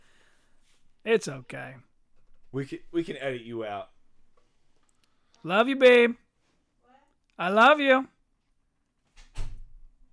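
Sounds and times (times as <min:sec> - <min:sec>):
speech: 0:01.1 - 0:01.9, 0:02.5 - 0:04.0, 0:05.4 - 0:06.2, 0:07.4 - 0:08.1
door swinging shut with a solid low thud: 0:09.2 - 0:09.9.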